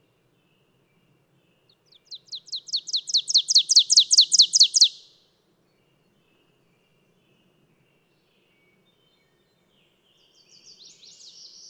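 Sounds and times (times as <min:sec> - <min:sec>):
bird singing high downslurred chips: 0:02.4 - 0:05.0.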